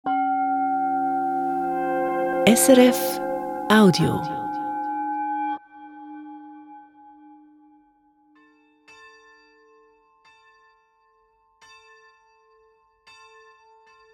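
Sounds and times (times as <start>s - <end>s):
church bells ringing a peal: 0.1s - 6.3s
speech: 2.4s - 4.4s.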